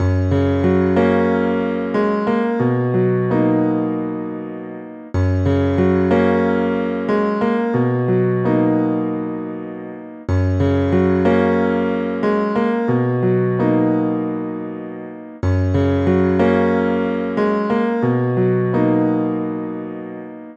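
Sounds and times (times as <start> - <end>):
piano music: 0.0 - 20.5.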